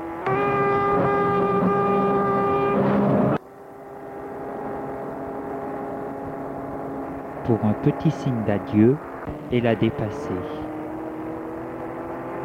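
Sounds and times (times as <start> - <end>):
road traffic and engine noise: 0.0 - 12.4
car horn honking: 0.2 - 3.4
speech: 7.5 - 10.7.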